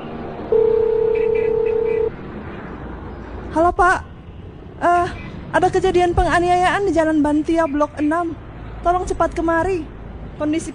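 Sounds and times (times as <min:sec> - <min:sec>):
speech: 0:00.5 - 0:00.8, 0:03.6 - 0:04.1, 0:05.5 - 0:10.7
telephone dial tone: 0:00.5 - 0:02.1.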